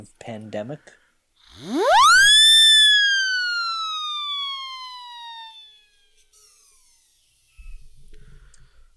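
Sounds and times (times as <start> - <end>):
speech: 0.0 - 2.0
siren whistle: 1.6 - 6.2.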